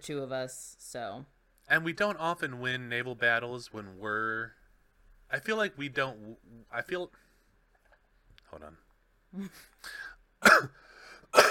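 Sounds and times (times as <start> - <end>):
speech: 0.0 - 4.6, 5.3 - 7.2, 8.5 - 10.8
sharp loud coughs: 10.4 - 11.4.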